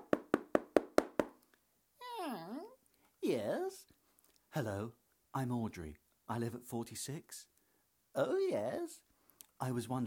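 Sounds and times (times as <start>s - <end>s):
knocking on a front door: 0.0s - 1.3s
speech: 4.5s - 7.5s, 8.2s - 10.0s.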